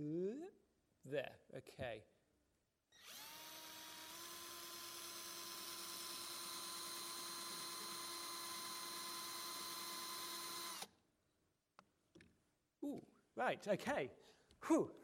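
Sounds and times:
speech: 0:00.0 - 0:02.2, 0:12.8 - 0:15.0
power drill boring a hole through a CD: 0:02.9 - 0:10.9.

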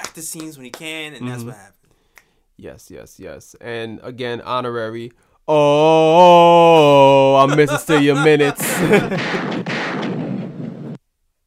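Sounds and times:
speech: 0:00.2 - 0:01.8, 0:02.6 - 0:10.0
laughter: 0:06.8 - 0:09.6
celebratory gunshot sound effect with rumbling echo: 0:08.6 - 0:11.0.

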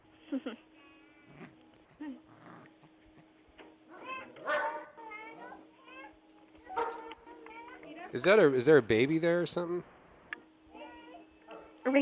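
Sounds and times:
speech: 0:00.3 - 0:00.7, 0:08.1 - 0:09.9
dog barking: 0:03.9 - 0:05.6, 0:06.7 - 0:07.2, 0:11.5 - 0:11.8.

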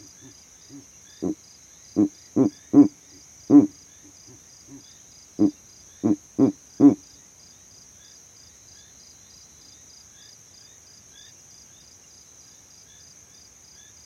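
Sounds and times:
constant shrill insect buzz in savanna: 0:00.0 - 0:01.4, 0:02.0 - 0:07.0
male Verreaux's eagle owl calling in low gruff grunts from a tree in savanna: 0:00.0 - 0:01.4, 0:02.0 - 0:07.0.

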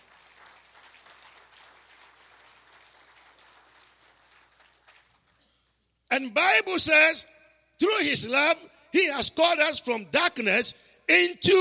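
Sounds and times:
crowd applauding: 0:00.0 - 0:05.4
speech: 0:06.1 - 0:11.5.

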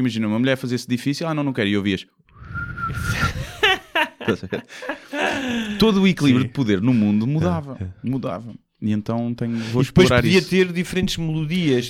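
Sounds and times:
speech: 0:00.0 - 0:02.3, 0:04.2 - 0:11.8
person imitating a whistle with a sustained tone: 0:02.3 - 0:03.4
person laughing: 0:03.0 - 0:07.2.

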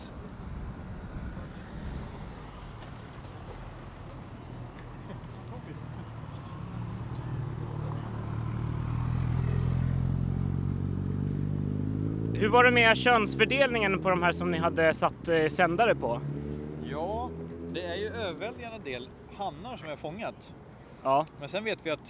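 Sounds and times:
vehicle engine passing by: 0:00.0 - 0:19.0
cars passing: 0:00.0 - 0:22.0
steady outdoor traffic rumble: 0:00.0 - 0:22.0
wind buffeting the microphone: 0:00.1 - 0:04.0
speech: 0:12.4 - 0:16.3, 0:18.3 - 0:22.0.

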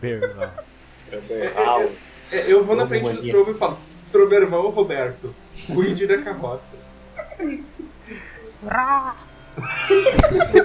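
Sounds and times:
laughter: 0:00.0 - 0:03.3, 0:07.2 - 0:10.6
speech: 0:00.0 - 0:10.6
person imitating a creature call like a dying chicken: 0:08.6 - 0:10.1.

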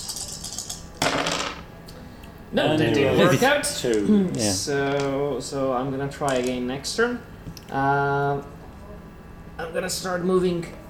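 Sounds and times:
handful of dice rattling across a hard tabletop: 0:00.0 - 0:01.6, 0:06.2 - 0:06.6
speech: 0:02.5 - 0:08.6, 0:09.6 - 0:10.8.

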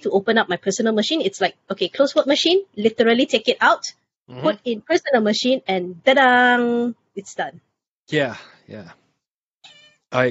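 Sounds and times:
speech: 0:00.0 - 0:09.0
cat meowing: 0:09.7 - 0:10.0.

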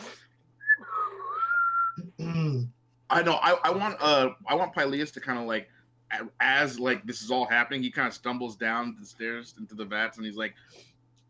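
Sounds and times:
person whistling outside to call horses: 0:00.6 - 0:02.1
speech: 0:03.1 - 0:10.9.

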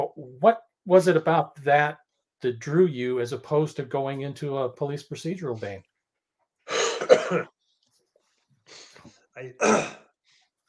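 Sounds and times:
speech: 0:00.2 - 0:05.9, 0:07.0 - 0:07.6, 0:08.7 - 0:10.0
person clearing throat: 0:06.7 - 0:07.6, 0:09.5 - 0:10.2
person coughing: 0:06.7 - 0:07.6, 0:09.5 - 0:10.2.

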